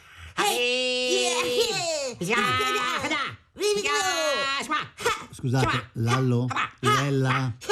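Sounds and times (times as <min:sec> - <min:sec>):
voices imitating martial arts fighting shouts into a microphone: 0:00.4 - 0:07.7
speech: 0:02.2 - 0:07.7.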